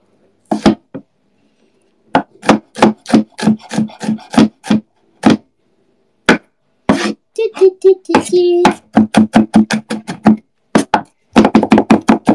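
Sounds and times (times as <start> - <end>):
knife chopping and mincing garlic on a cutting board: 0.5 - 1.0, 2.2 - 5.4, 8.1 - 12.3.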